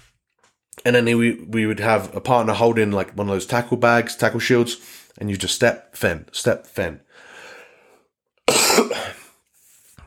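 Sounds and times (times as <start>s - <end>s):
speech: 0.8s - 7.3s
person who has been sick coughing: 8.5s - 9.4s
throat clearing: 8.5s - 9.4s.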